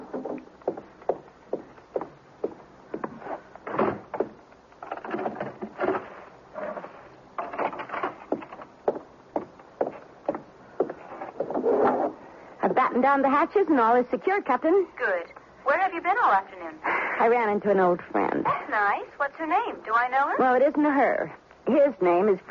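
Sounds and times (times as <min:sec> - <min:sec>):
steady footsteps crossing a room: 0:00.0 - 0:04.4, 0:05.2 - 0:12.2
door closing thud: 0:03.7 - 0:04.3
speech: 0:13.0 - 0:22.4.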